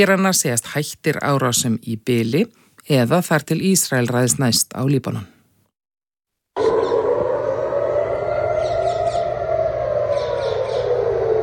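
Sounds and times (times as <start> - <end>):
speech: 0.0 - 5.4
civil defense air raid sirens in Israel during Iranian attacks: 6.6 - 11.4.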